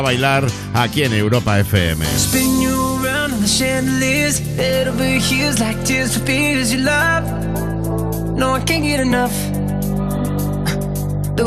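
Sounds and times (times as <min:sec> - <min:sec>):
speech: 0:00.0 - 0:07.7, 0:08.4 - 0:09.6
upbeat pop track with bright bouncy 80s-style piano over bass and drums: 0:00.0 - 0:11.4.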